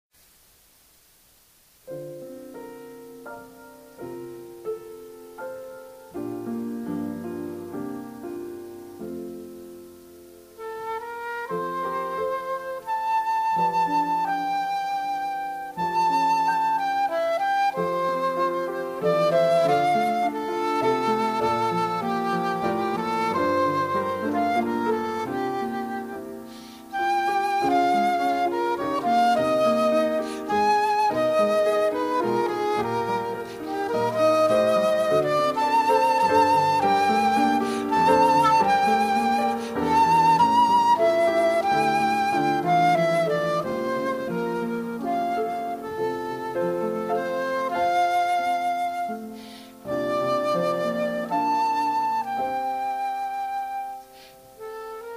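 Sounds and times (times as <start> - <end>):
piano: 0.2 - 55.1
flute: 1.9 - 55.1.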